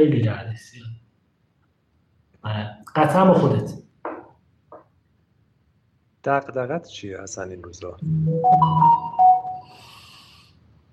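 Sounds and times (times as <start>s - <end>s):
speech: 0.0s - 0.8s, 2.4s - 3.8s, 6.2s - 9.9s
phone notification electronic chime: 8.0s - 9.7s
faint hiss: 9.6s - 10.9s.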